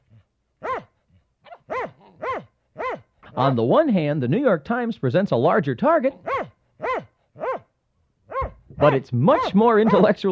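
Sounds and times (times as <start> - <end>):
dog barking: 0.0 - 3.1, 6.2 - 7.7, 8.3 - 10.2
speech: 3.4 - 6.5, 8.8 - 10.3.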